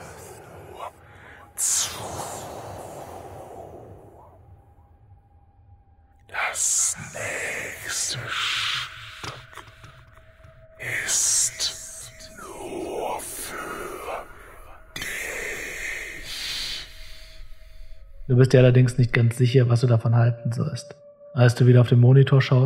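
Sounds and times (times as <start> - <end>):
dozens to hundreds of overlapping whispering voices from a loudspeaker: 0.0 - 4.4, 6.3 - 17.4
speech: 18.4 - 22.6.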